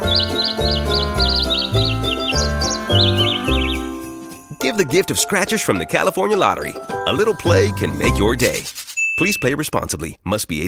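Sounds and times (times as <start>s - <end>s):
bright chirpy bird-like tweets carrying a festive tune: 0.0s - 4.2s
steady full musical backing: 0.0s - 8.6s
speech: 4.8s - 10.6s.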